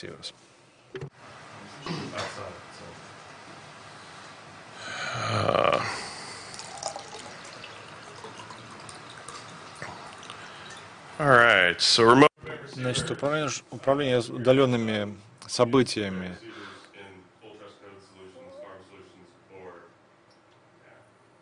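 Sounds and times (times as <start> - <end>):
speech: 0.0 - 3.1, 5.1 - 6.0, 11.2 - 16.6
person sipping and gulping water: 5.2 - 10.9
water pouring: 6.4 - 11.0.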